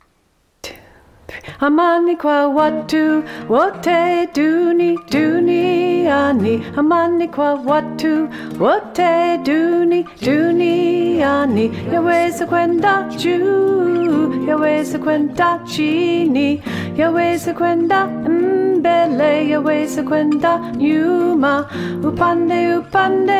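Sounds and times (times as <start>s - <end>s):
soprano lead singing: 1.4s - 23.3s.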